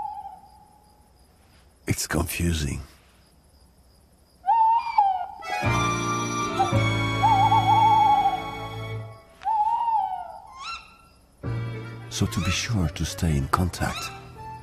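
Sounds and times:
pair of owls hooting in a duet in narrow village streets: 0:00.0 - 0:00.8, 0:04.4 - 0:11.3, 0:12.1 - 0:14.6
speech: 0:02.0 - 0:02.9, 0:12.2 - 0:14.2.

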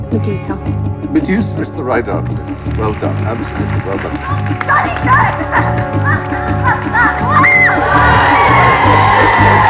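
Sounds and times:
speech: 0:00.2 - 0:09.6
crowd of schoolgirls cheering and shrieking: 0:06.5 - 0:09.6
schoolgirls whooping: 0:07.3 - 0:09.6.

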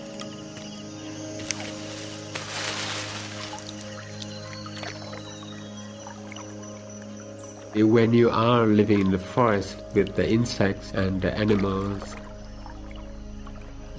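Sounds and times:
low ambient drone: 0:00.0 - 0:13.9
splashing water: 0:01.4 - 0:05.5, 0:08.8 - 0:13.7
shallow river water lapping as a canoe glides: 0:01.4 - 0:13.9
speech: 0:07.8 - 0:12.2.

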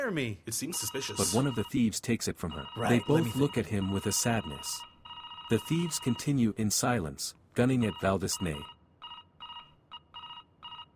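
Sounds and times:
speech: 0:00.0 - 0:04.9, 0:05.5 - 0:08.8
telephone ringing in short electronic warbling bursts: 0:00.7 - 0:01.8, 0:02.5 - 0:06.4, 0:07.8 - 0:10.9.

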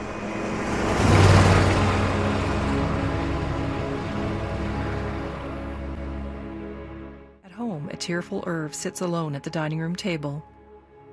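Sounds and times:
RV engine and road noise driving homeward: 0:00.0 - 0:06.1
speech: 0:08.0 - 0:10.5.

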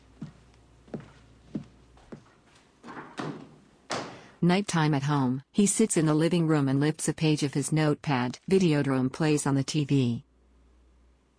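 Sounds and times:
man's footsteps walking to a door: 0:00.0 - 0:04.3
door opened and pulled shut as a man exits: 0:02.8 - 0:04.3
speech: 0:04.4 - 0:10.3.

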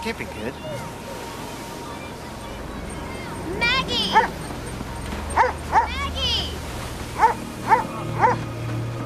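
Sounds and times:
speech: 0:00.0 - 0:01.0, 0:03.5 - 0:04.4
steady rushing noise on a beach: 0:00.0 - 0:09.0
dog yelping on a beach: 0:03.6 - 0:06.0, 0:07.2 - 0:08.4
dog barking on a beach: 0:04.1 - 0:04.4, 0:05.4 - 0:06.0, 0:07.2 - 0:08.4.

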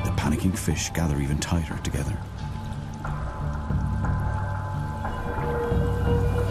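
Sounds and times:
bubbling water: 0:00.1 - 0:06.4
speech: 0:00.3 - 0:02.5
predator's underwater scream beneath a shoal of sand eels: 0:04.8 - 0:06.4.

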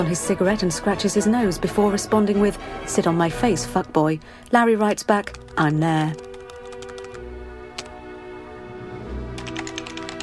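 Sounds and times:
speech: 0:00.0 - 0:06.2
typing on a computer keyboard during an online chat: 0:04.9 - 0:07.2, 0:09.4 - 0:10.2.

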